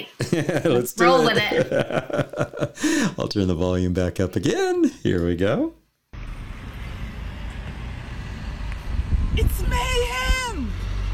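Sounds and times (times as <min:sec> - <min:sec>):
speech: 0:00.0 - 0:05.8
laughter: 0:00.2 - 0:03.1
cars rumbling past on busy street: 0:06.2 - 0:11.1.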